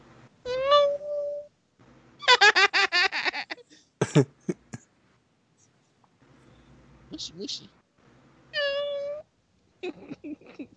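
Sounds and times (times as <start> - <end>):
laughter: 2.3 - 4.8, 9.8 - 10.7
soft choppy vocal sounds: 4.0 - 4.8
speech: 4.2 - 4.4, 7.2 - 7.8, 9.8 - 10.7
cat meowing: 8.6 - 9.2.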